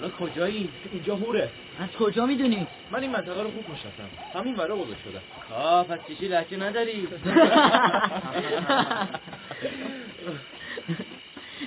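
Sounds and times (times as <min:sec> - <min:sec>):
speech: 0:00.2 - 0:11.0
chorus of jackals howling and yipping: 0:02.5 - 0:06.4
laughter: 0:07.1 - 0:11.6.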